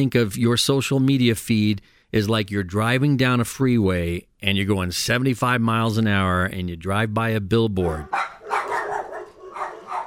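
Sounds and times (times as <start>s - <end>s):
speech: 0.0s - 8.3s
dogs barking: 7.8s - 10.0s.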